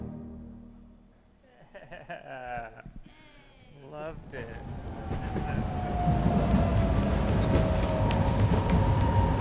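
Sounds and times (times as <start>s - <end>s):
laughter: 1.4s - 3.1s
commuter train rumbling as it approaches a station: 3.9s - 9.4s.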